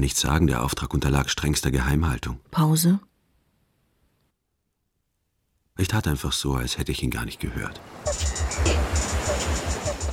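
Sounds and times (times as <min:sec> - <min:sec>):
speech: 0:00.0 - 0:03.1, 0:05.8 - 0:08.8
sea waves washing in: 0:07.5 - 0:10.1.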